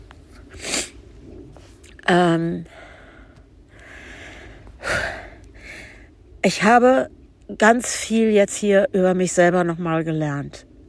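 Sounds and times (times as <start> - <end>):
sharp sniffle through the nose: 0.5 - 1.0
speech: 2.1 - 2.8, 6.4 - 10.7.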